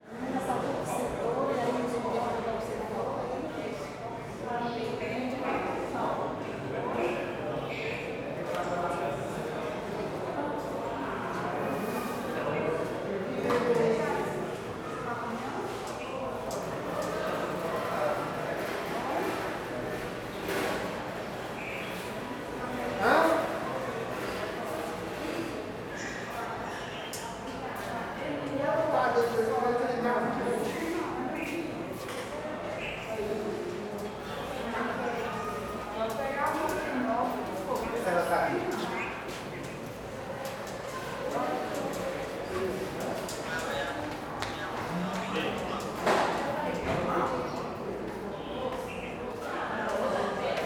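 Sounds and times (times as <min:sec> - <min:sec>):
crowd murmur in a public hospital corridor: 0:00.0 - 0:50.6.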